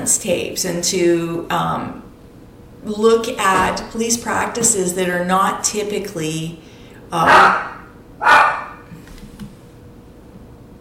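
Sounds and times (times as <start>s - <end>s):
speech: 0.0s - 2.1s, 2.8s - 7.7s
dogs barking: 7.2s - 8.9s.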